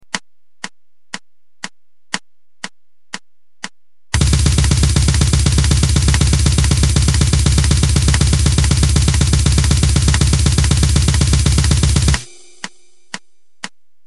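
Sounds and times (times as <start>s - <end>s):
blast bass drum hit: 4.2s - 12.6s.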